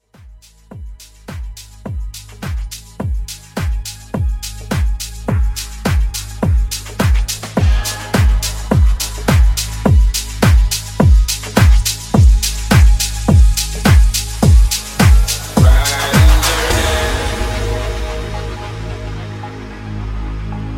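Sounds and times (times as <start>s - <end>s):
transition sound: 4.4s - 20.5s.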